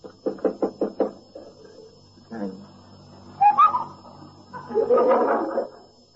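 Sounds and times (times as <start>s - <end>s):
knocking on a bedroom door: 0.2s - 1.2s
laughter: 4.5s - 5.8s.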